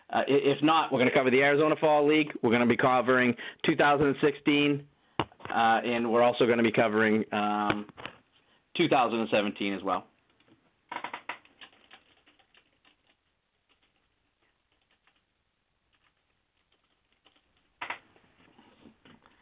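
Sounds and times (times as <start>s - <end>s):
speech: 0.1s - 4.9s, 5.5s - 8.2s, 8.8s - 10.1s
typing on a computer keyboard: 10.4s - 18.0s.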